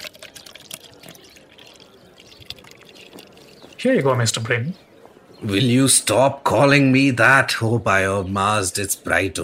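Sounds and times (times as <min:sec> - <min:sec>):
water pouring out of a water carrier's bag: 0:00.0 - 0:03.8
speech: 0:03.8 - 0:09.4.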